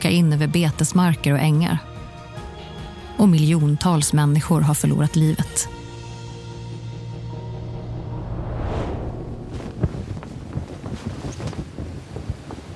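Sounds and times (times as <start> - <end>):
speech: 0.1 - 2.0, 3.2 - 5.8
wind blowing along a Mediterranean coastline: 7.3 - 12.7.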